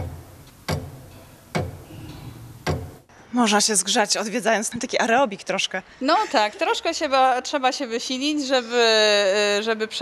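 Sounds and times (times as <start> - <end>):
1931 tower clock mechanism from Krosno, Poland, ticking: 0.0 - 3.0
low rumbling hum: 0.0 - 3.1
speech: 3.3 - 10.0.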